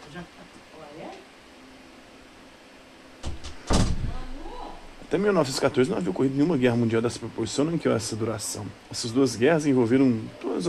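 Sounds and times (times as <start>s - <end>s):
speech: 0.1s - 0.5s, 5.1s - 10.6s
door pushed shut with knocking thumps: 3.2s - 4.2s.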